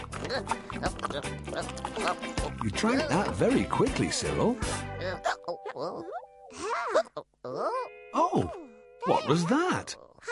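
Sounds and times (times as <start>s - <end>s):
cartoonish squeaky voiced hiccups: 0.3s - 2.6s, 5.0s - 8.7s
speech: 0.3s - 10.3s.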